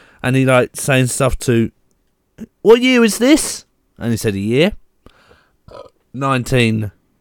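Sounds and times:
speech: 0:00.2 - 0:01.8, 0:02.4 - 0:04.8, 0:05.7 - 0:07.0
breathy noise: 0:05.0 - 0:06.0
person burping: 0:05.7 - 0:06.0.

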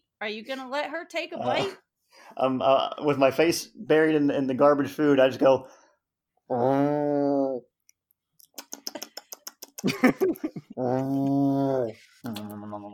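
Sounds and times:
speech: 0:00.2 - 0:05.8, 0:06.5 - 0:07.7, 0:09.8 - 0:12.9
person imitating an annoyed cat growl: 0:06.5 - 0:07.7, 0:10.8 - 0:12.9
sharp clicking sounds: 0:08.4 - 0:10.2
laughter: 0:09.8 - 0:11.3.

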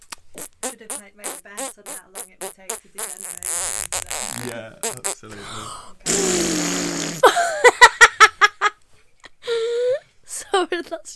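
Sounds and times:
loud buzzy raspberry imitating a fart: 0:00.0 - 0:05.3, 0:06.0 - 0:07.3
speech: 0:00.4 - 0:07.3, 0:10.7 - 0:11.1
short drawn-out vocal squeal: 0:01.6 - 0:05.2, 0:06.1 - 0:07.2
person giggling rhythmically: 0:04.4 - 0:08.7.

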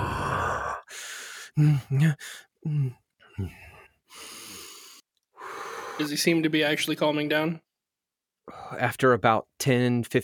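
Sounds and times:
man giving low voiced groan or sigh while exhaling: 0:00.0 - 0:00.8, 0:01.6 - 0:03.7
man sitting on the floor exhaling deeply during breathing exercises: 0:00.0 - 0:06.1
speech: 0:01.6 - 0:04.4, 0:06.0 - 0:07.6, 0:08.5 - 0:10.2.

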